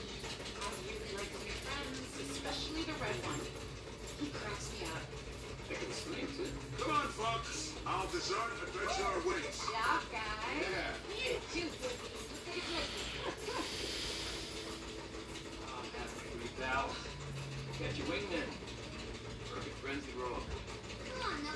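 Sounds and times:
dog panting: 0.0s - 20.5s
speech: 4.2s - 13.3s, 17.8s - 18.6s, 19.8s - 21.5s.

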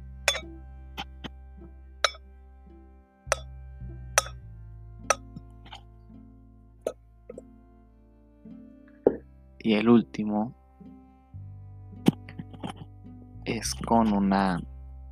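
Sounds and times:
low steady hum: 0.0s - 15.1s
spoon lightly tapping a metal pot: 4.2s - 4.4s, 5.1s - 5.4s
speech: 9.6s - 10.6s, 13.6s - 14.7s.

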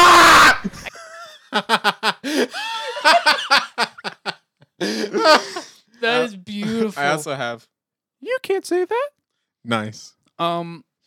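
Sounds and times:
person screaming into online game voice chat after dying: 0.0s - 0.7s, 4.9s - 7.2s
rhythmic bursts of laughter: 0.2s - 6.3s
speech: 1.6s - 3.9s, 4.8s - 11.0s.

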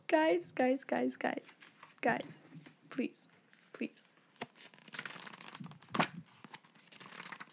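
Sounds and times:
speech: 0.1s - 4.1s
pages of a paper book rustling as they are turned: 1.5s - 2.8s, 3.5s - 7.5s.

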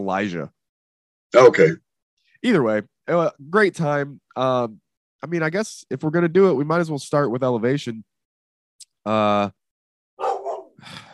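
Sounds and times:
speech: 0.0s - 0.6s, 1.3s - 1.8s, 2.4s - 8.1s, 9.0s - 9.6s, 10.8s - 11.1s
dog barking: 10.2s - 10.8s.

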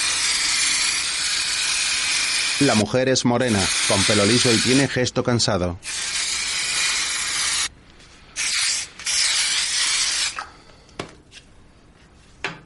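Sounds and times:
aerosol deodorant sprayed onto armpits and torso: 0.0s - 2.9s, 3.5s - 5.0s, 5.8s - 7.7s, 8.4s - 10.5s
speech: 2.6s - 6.1s.

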